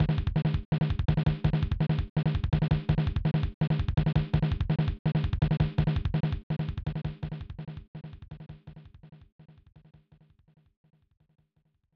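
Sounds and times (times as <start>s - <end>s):
1994 SNES drumbeat: 0.0s - 8.8s.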